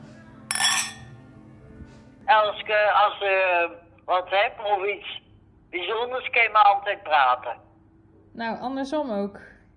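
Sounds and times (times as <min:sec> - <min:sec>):
glasses of orange wine clinking in a toast: 0:00.5 - 0:01.2
speech: 0:02.3 - 0:07.6, 0:08.4 - 0:09.5.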